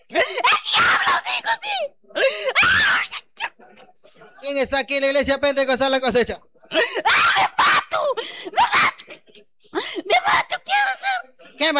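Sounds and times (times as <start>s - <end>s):
person screaming and wailing in a reverberant room: 0.1s - 3.4s, 6.8s - 9.1s, 10.1s - 11.2s
speech: 4.5s - 7.1s.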